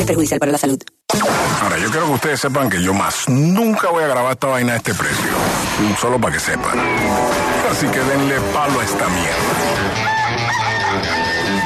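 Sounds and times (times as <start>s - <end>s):
speech: 0.0s - 0.9s, 1.6s - 10.1s
rooster crowing loudly: 9.9s - 11.6s.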